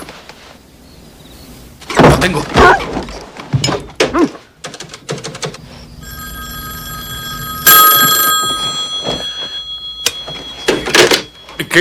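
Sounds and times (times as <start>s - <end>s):
knocks and thuds: 1.8s - 5.6s
telephone bell ringing: 5.9s - 11.7s.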